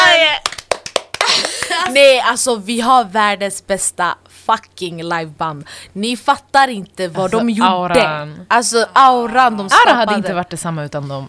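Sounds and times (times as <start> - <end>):
hands clapping: 0.2 - 2.0
speech: 1.9 - 11.2.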